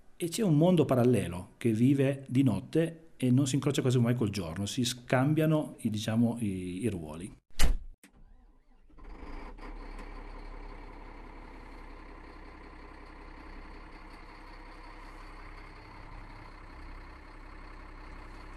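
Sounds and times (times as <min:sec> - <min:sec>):
speech: 0:00.2 - 0:07.4
heavy diesel engine of a snow groomer of about 500 horsepower starting and idling: 0:08.0 - 0:18.5.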